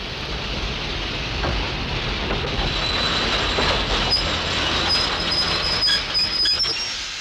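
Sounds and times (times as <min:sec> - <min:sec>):
train rolling past below an open window: 0:00.0 - 0:07.1
thin high squeal of train wheels: 0:02.6 - 0:07.1.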